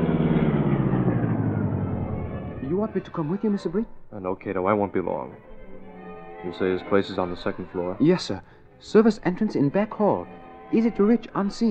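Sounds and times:
car engine rumbling as a black car rolls to a halt in an alley: 0.0s - 4.1s
speech: 2.8s - 5.5s, 6.4s - 11.6s.

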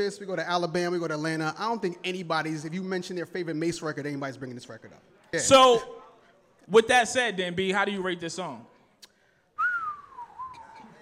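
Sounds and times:
speech: 0.0s - 6.0s, 6.7s - 8.7s
person whistling imitating a falling bomb: 9.6s - 10.8s.

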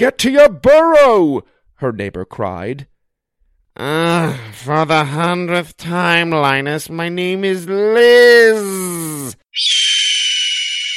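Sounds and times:
speech: 0.0s - 2.9s, 3.8s - 10.1s
hawk shrieking while swooping down: 9.5s - 10.9s.

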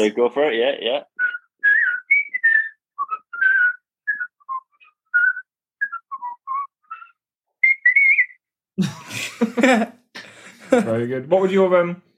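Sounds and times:
speech: 0.0s - 1.1s, 8.8s - 12.1s
person whistling a lively bouncy TV quiz show theme tune: 1.2s - 8.5s
burst of laughter: 8.8s - 10.8s.

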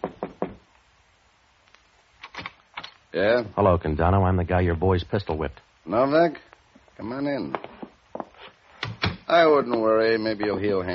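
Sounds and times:
knocking on a wooden office door: 0.0s - 0.6s
speech: 3.1s - 7.7s, 9.3s - 10.9s.

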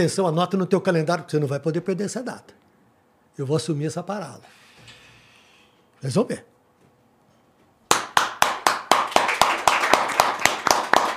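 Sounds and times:
speech: 0.0s - 2.6s, 3.4s - 4.6s, 6.0s - 6.5s
applause in a studio: 7.9s - 11.1s.

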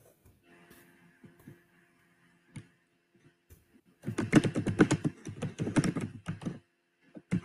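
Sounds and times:
rapid clacking of keys on a computer keyboard: 4.0s - 7.4s.

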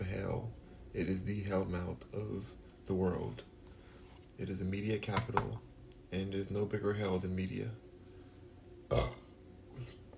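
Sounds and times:
speech: 1.0s - 3.5s, 4.4s - 7.8s, 8.9s - 9.1s
person burping: 8.9s - 9.4s.

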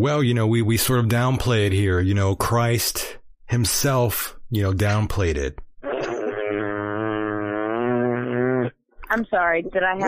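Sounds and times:
speech: 0.0s - 5.6s, 9.2s - 10.0s
long low buzzing fart: 5.8s - 8.8s.

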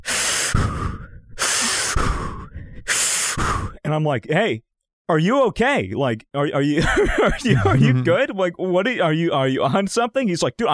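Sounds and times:
person imitating heavy panicked breathing: 0.0s - 3.8s, 7.7s - 8.2s
speech: 3.9s - 10.7s
laughter: 6.8s - 8.2s.

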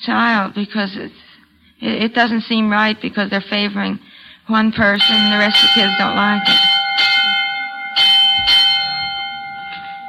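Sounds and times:
speech: 0.0s - 1.2s, 1.8s - 6.6s
bell ringing with a sustained metallic tone: 4.8s - 10.0s.

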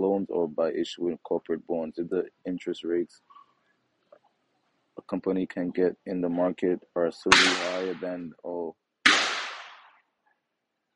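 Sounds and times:
speech: 0.1s - 3.4s, 5.0s - 8.8s
firework exploding outside: 9.1s - 9.9s.

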